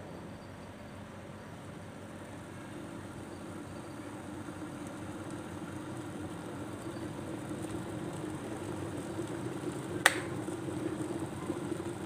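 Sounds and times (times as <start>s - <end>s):
electric teapot: 0.1s - 12.0s.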